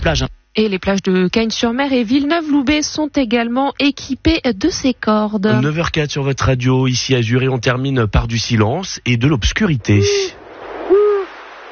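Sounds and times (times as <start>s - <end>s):
speech: 0.0s - 10.4s
soft hiss of night air: 0.0s - 11.7s
owl hooting: 9.9s - 11.4s.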